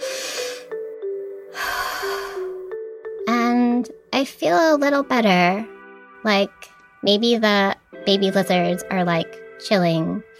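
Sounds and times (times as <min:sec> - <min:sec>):
person taking a deep breath: 0:00.0 - 0:00.8, 0:01.5 - 0:02.6
faint steady tonal background: 0:00.0 - 0:10.3
speech: 0:04.2 - 0:10.3.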